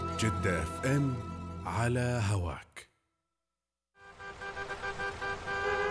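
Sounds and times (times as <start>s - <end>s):
speech: 0.2s - 2.9s
several car horns blaring in a traffic jam: 4.0s - 5.8s.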